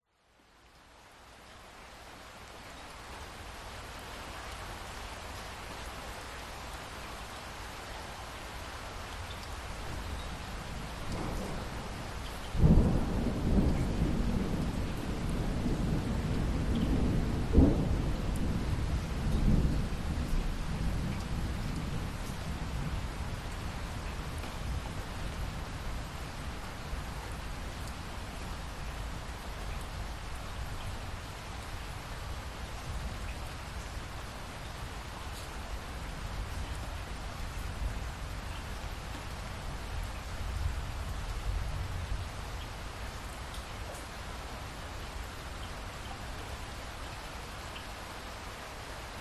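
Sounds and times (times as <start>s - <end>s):
light rain dripping after a thunderstorm: 0.0s - 49.2s
distant thunder rumbles: 11.0s - 23.0s.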